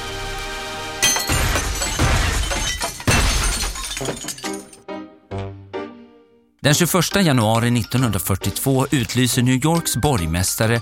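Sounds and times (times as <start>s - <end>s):
sledgehammer blows smashing pinball machines: 1.0s - 4.6s
pinball machine glass shattering: 1.0s - 4.8s
ringing tinkling glass shards: 1.0s - 4.8s
speech: 6.6s - 10.7s.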